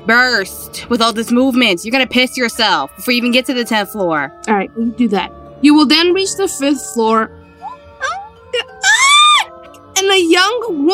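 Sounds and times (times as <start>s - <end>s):
speech: 0.0s - 7.4s, 10.0s - 10.9s
person letting out short pitch-swooping vocal cries: 7.6s - 9.5s
person screaming loud sustained high-pitched scream: 7.6s - 9.5s.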